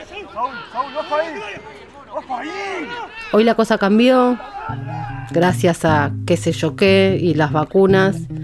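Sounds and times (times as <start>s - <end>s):
football players shouting and calling in an empty stadium: 0.0s - 5.8s
speech: 0.4s - 8.4s.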